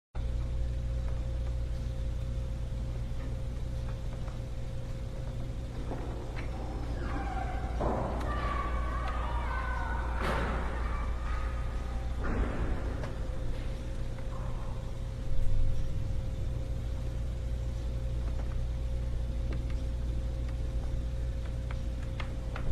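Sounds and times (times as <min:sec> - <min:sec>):
ambience inside a house: 0:00.2 - 0:22.7.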